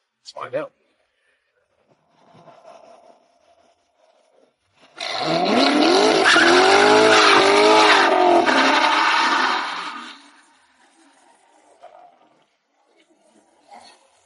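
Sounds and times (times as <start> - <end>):
2014 C7 Corvette manual naturally aspirated V8 engine accelerating hard: 4.8 - 11.5
Corvette tires squealing under acceleration: 5.0 - 11.4.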